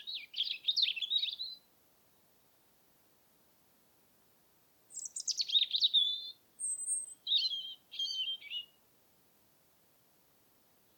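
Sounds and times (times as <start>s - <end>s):
European robin Erithacus rubecula song: 0.0s - 1.7s, 4.9s - 8.8s.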